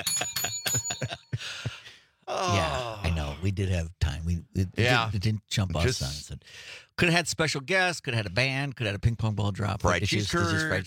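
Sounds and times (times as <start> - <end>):
bell sound effect strikes: 0.0 - 1.4
speech: 3.4 - 10.8.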